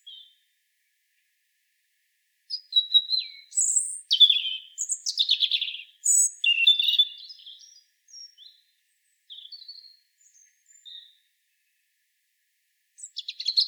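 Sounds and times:
European robin singing: 0.0 - 0.4, 2.5 - 11.2, 13.0 - 13.6.

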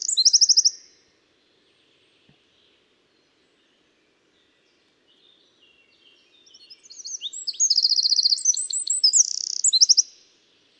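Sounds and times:
Eurasian wren Troglodytes troglodytes singing: 0.0 - 0.9, 6.4 - 10.2.

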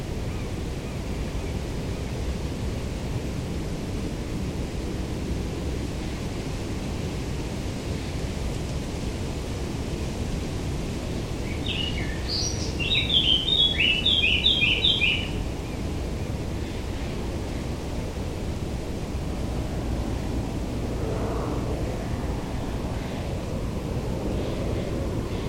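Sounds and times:
steady background noise: 0.0 - 25.4
Eurasian blackcap singing, Sylvia atricapilla: 11.6 - 15.4.

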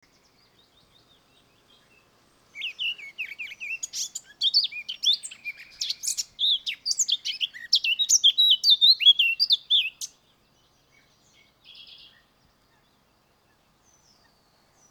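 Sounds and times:
Eurasian blackcap singing, Sylvia atricapilla: 0.2 - 10.2.

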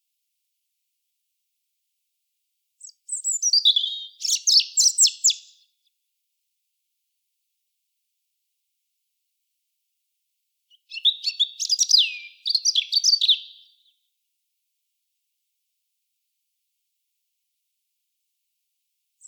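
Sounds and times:
Erithacus rubecula European robin song: 2.8 - 5.8, 10.7 - 14.0.

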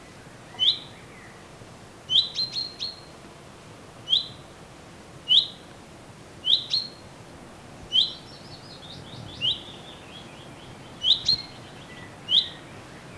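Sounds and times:
faint background hiss: 0.0 - 13.1
Common chaffinch Fringilla coelebs calls: 0.6 - 1.3, 2.1 - 3.1, 4.1 - 4.4, 5.3 - 5.6, 6.4 - 7.0, 7.9 - 13.1.

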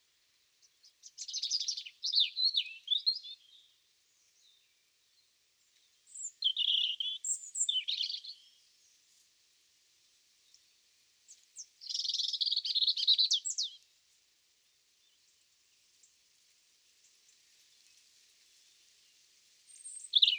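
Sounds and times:
European robin Erithacus rubecula singing: 0.6 - 3.7, 6.0 - 8.6, 11.3 - 13.8, 19.7 - 20.3.

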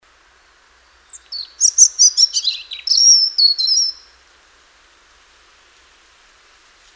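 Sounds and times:
European robin Erithacus rubecula song: 0.4 - 4.2.

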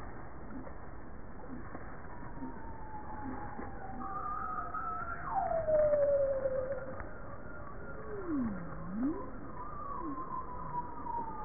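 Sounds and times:
bowhead whale tonal call: 2.4 - 11.4.

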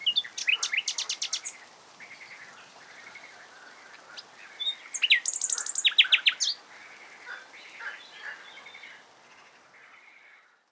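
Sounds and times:
Common nightingale Luscinia megarhynchos singing: 0.0 - 3.4, 4.2 - 6.7.

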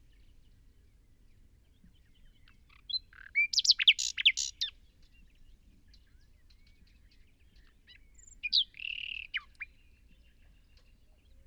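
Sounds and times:
Common nightingale Luscinia megarhynchos singing: 2.2 - 4.8, 7.6 - 10.9.

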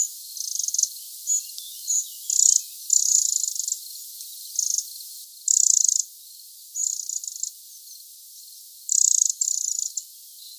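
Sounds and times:
Eurasian wren Troglodytes troglodytes giving harsh dry high-pitched buzzy rattling bursts: 0.0 - 3.8, 4.5 - 6.0, 6.8 - 7.5, 8.9 - 10.0.

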